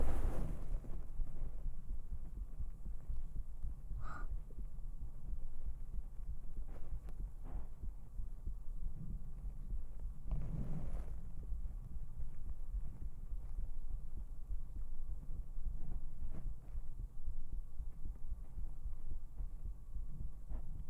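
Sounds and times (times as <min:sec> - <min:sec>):
sweater fabric rustle: 0:00.0 - 0:01.0
fast human heartbeat through a sweater: 0:00.0 - 0:20.8.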